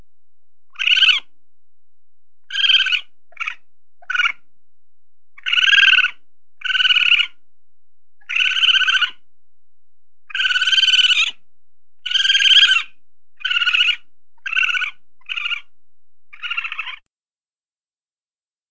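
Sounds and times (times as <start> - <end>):
raccoon chittering with squeaks: 0.8 - 1.3, 2.5 - 4.4, 5.4 - 7.4, 8.2 - 9.2, 10.3 - 11.4, 12.0 - 15.7, 16.3 - 17.0.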